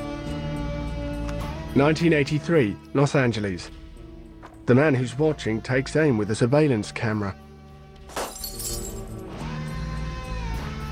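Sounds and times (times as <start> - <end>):
steady music: 0.0 - 10.9
speech: 1.8 - 3.8, 4.7 - 7.4
light bulb being smashed: 8.0 - 9.2.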